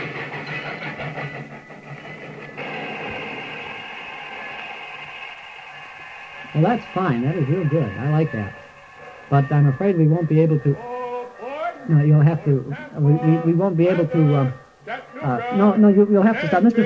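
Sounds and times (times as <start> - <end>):
voice imitating a passenger train arriving: 6.5 - 8.6, 9.3 - 16.8
speech: 6.6 - 8.6, 9.3 - 10.9, 11.9 - 16.8.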